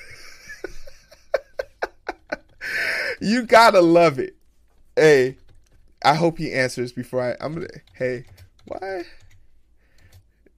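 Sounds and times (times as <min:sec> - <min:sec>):
laughter: 0:00.0 - 0:03.2
typing on a computer keyboard while filling out a ballot: 0:02.2 - 0:02.7, 0:04.7 - 0:06.0, 0:07.6 - 0:10.3
speech: 0:03.2 - 0:04.4, 0:05.0 - 0:05.4, 0:06.0 - 0:09.2.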